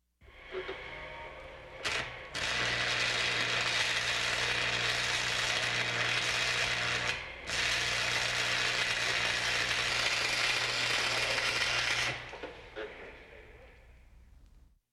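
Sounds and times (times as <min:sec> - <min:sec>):
arc welding: 0:01.8 - 0:12.5.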